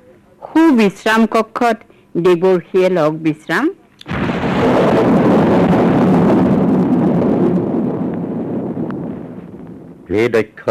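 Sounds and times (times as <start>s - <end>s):
speech: 0.4s - 4.2s, 10.1s - 10.6s
thunderstorm sound effect in a drama: 4.1s - 10.6s.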